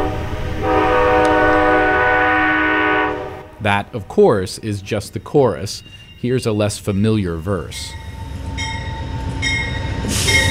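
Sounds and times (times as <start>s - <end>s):
passenger train cars rumbling arriving at a station: 0.0s - 10.5s
speech: 3.6s - 8.0s
passenger train wheels squealing arriving at a station: 5.0s - 10.5s.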